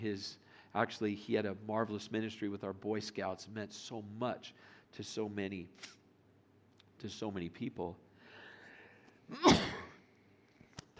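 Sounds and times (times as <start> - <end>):
speech: 0.0 - 6.0, 7.0 - 8.0, 9.3 - 9.8
human sneeze: 9.3 - 10.0.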